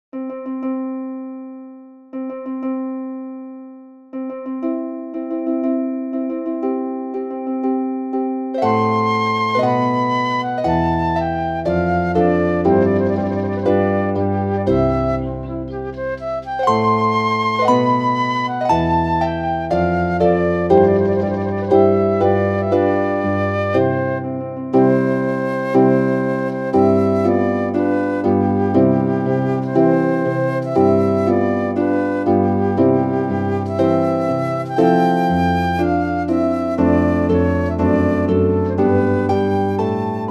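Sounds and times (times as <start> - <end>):
harp: 0.2 - 40.2
flute: 8.6 - 40.2.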